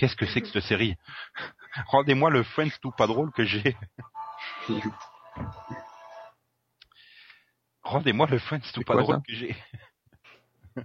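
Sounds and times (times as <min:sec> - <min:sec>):
speech: 0:00.0 - 0:05.8, 0:07.8 - 0:09.9
mobile phone ringtone with bright electronic tones: 0:02.9 - 0:06.3
laughter: 0:03.2 - 0:05.9.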